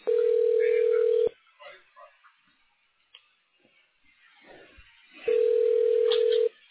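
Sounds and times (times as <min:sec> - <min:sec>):
long steady mid-pitched telephone tones on a call: 0:00.0 - 0:01.3, 0:05.3 - 0:06.5.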